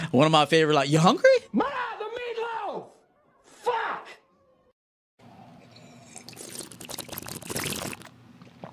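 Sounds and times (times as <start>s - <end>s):
speech: 0.1s - 1.3s
cold water pouring into a glass: 5.9s - 8.1s.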